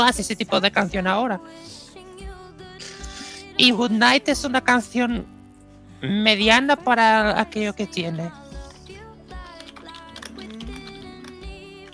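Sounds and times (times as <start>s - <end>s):
speech: 0.0s - 1.8s, 3.6s - 5.3s, 6.0s - 8.4s
steady music with sustained tones: 0.0s - 11.9s
typing on a computer keyboard: 9.4s - 11.9s.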